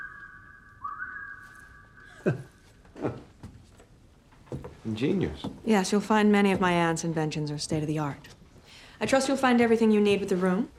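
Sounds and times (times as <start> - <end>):
man whistling into a speaking tube: 0.0 - 2.7
speech: 2.2 - 3.2, 4.9 - 8.4, 9.0 - 10.7.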